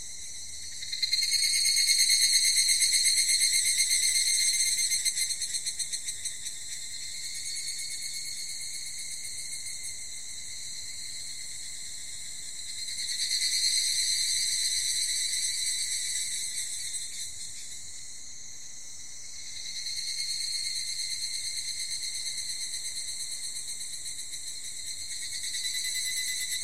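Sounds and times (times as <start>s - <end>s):
higurashi cicada calling: 0.2s - 26.6s.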